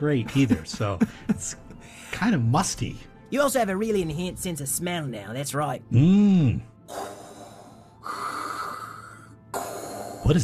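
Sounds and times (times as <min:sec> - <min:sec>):
speech: 0:00.0 - 0:07.0, 0:10.3 - 0:10.4
deep heavy breathing of a robotic shark creature: 0:06.9 - 0:10.4.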